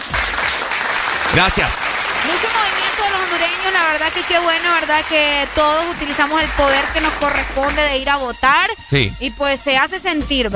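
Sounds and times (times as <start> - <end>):
steady applause of clapping hands: 0.0 - 8.3
speech: 1.3 - 2.4, 3.1 - 10.5.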